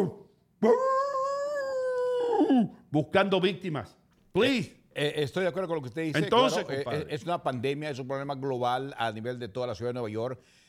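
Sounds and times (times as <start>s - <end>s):
speech: 0.0s - 1.0s, 2.6s - 10.6s
person imitating a wolf howl: 0.0s - 2.8s.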